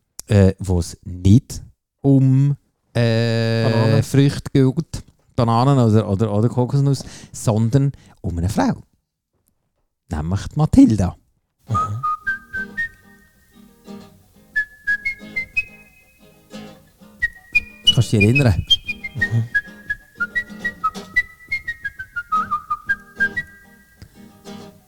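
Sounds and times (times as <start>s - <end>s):
speech: 0.3s - 8.9s, 10.1s - 11.9s, 18.1s - 19.6s
brief murmured exchange: 3.4s - 4.2s
person whistling a lively bouncy tune: 11.7s - 13.5s, 14.6s - 16.4s, 17.2s - 24.0s.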